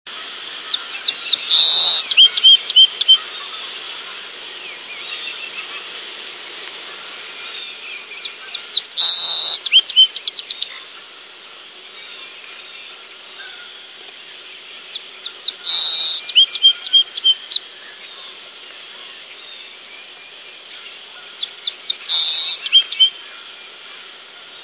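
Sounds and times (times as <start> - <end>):
song sparrow singing: 0.8 - 3.5, 7.4 - 10.8, 14.8 - 18.4, 19.2 - 23.3.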